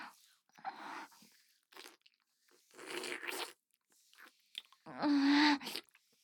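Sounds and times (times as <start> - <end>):
wet chewing and slurping of a slimy nameko-like mushroom soup: 1.7 - 4.9.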